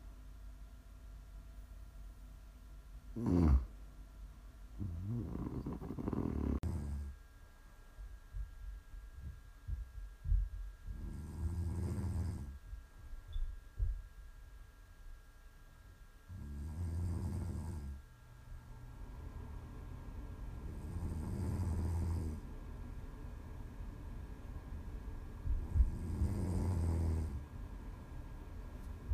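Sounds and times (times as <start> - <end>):
faint steady hum: 0.0 - 29.1
person snoring slowly and deeply: 3.2 - 3.8, 4.8 - 7.2, 10.9 - 12.6, 16.3 - 18.0, 20.6 - 22.5, 25.6 - 27.4.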